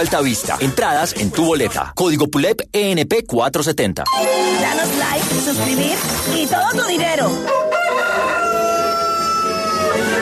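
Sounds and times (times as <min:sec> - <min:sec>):
speech: 0:00.0 - 0:07.7
rooster crowing: 0:07.4 - 0:10.2.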